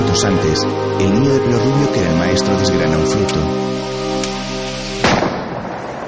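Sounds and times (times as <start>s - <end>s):
speech: 0.2s - 4.3s
gunshot in a forest: 5.0s - 6.0s.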